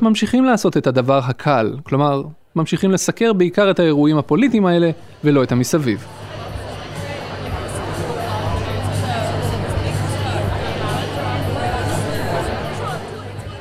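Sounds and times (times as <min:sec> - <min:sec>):
speech: 0:00.0 - 0:06.3
crowd chatter in a large room: 0:05.0 - 0:13.5.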